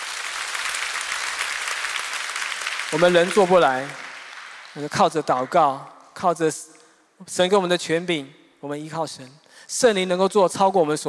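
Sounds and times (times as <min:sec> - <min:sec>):
congregation clapping during a worship service at a Christian camp: 0:00.0 - 0:06.0
speech: 0:02.9 - 0:04.0, 0:04.8 - 0:11.0.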